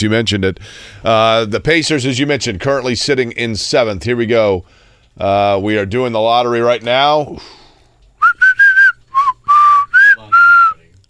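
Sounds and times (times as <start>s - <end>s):
speech: 0.0s - 7.6s
Aztec whistle blown in shrill breathy bursts: 8.2s - 10.8s.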